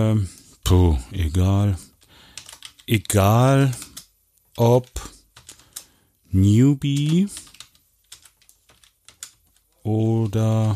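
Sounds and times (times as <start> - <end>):
speech: 0.0 - 1.9, 2.9 - 3.9, 4.6 - 5.1, 6.3 - 7.5, 9.8 - 10.7
typing on a computer keyboard: 1.9 - 6.0, 6.8 - 10.7.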